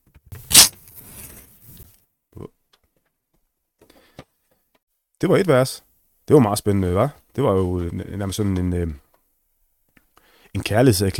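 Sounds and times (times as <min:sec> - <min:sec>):
page torn out of a book: 0:00.4 - 0:01.8
speech: 0:05.2 - 0:09.0, 0:10.6 - 0:11.1.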